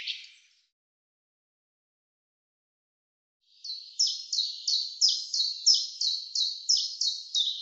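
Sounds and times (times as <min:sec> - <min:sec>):
common chaffinch singing: 0:00.0 - 0:00.5, 0:03.6 - 0:07.6.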